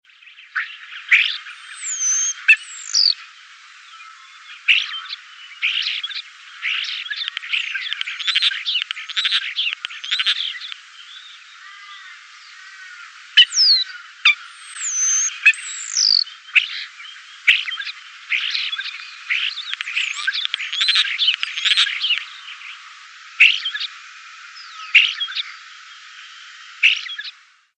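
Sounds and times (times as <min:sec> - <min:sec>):
common starling calls: 0:00.2 - 0:27.4.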